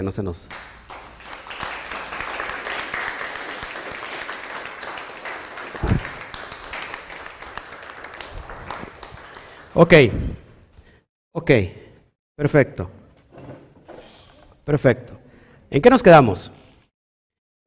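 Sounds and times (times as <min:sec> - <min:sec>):
speech: 0:00.0 - 0:01.1, 0:09.8 - 0:10.4, 0:11.4 - 0:11.8, 0:12.4 - 0:13.0, 0:14.7 - 0:16.6
crowd applauding: 0:00.5 - 0:09.8.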